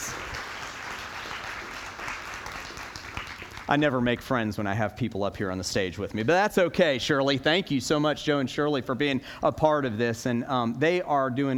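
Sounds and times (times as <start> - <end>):
crowd applauding: 0.0 - 4.0
speech: 3.7 - 11.5.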